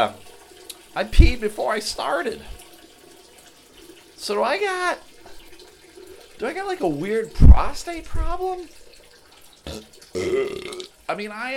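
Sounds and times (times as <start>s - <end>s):
speech: 0.0s - 0.2s, 1.0s - 2.6s, 4.2s - 5.1s, 6.4s - 8.8s, 9.6s - 11.5s
loud fart: 9.7s - 10.9s.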